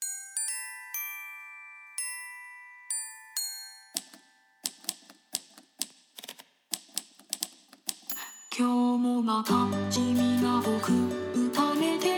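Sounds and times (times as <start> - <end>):
bright bell-like chimed notes: 0.0 - 4.7, 8.1 - 9.0
crisp typewriter-style clacking beat: 4.0 - 8.2
speech: 8.6 - 12.0.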